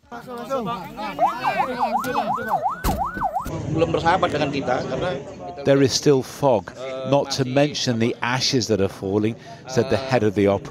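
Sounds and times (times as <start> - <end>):
speech: 0.2 - 10.7
ambulance siren wailing in rising-and-falling sweeps: 1.0 - 3.5.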